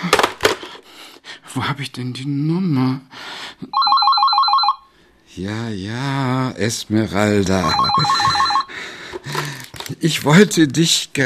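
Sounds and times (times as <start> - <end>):
speech: 1.6 - 3.8, 5.4 - 8.4, 10.0 - 11.2
telephone ringing with a rapid warbling trill: 3.7 - 4.9, 7.6 - 8.8.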